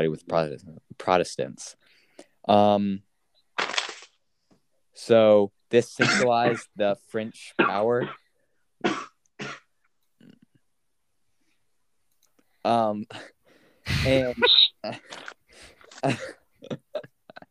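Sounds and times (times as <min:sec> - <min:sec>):
speech: 0:00.0 - 0:01.8, 0:02.4 - 0:03.1, 0:05.0 - 0:08.2, 0:12.6 - 0:13.3, 0:14.0 - 0:17.1
coughing: 0:06.0 - 0:06.7, 0:07.6 - 0:08.2, 0:08.8 - 0:09.7, 0:15.9 - 0:17.4.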